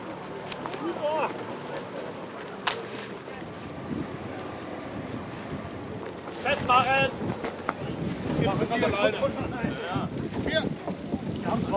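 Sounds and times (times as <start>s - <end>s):
faint indistinct voices: 0.0s - 11.7s
two outboard motors braking a raft on the Elbe river: 0.0s - 11.7s
wind buffeting the microphone: 3.4s - 11.7s
speech: 8.7s - 9.9s.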